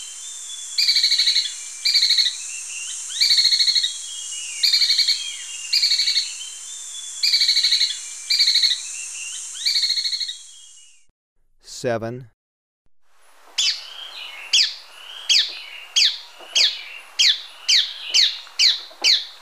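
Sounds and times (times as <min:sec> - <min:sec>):
Spillmann's tapaculo trilling song in Ecuador: 0:00.0 - 0:11.1, 0:13.6 - 0:19.4
speech: 0:11.8 - 0:12.4.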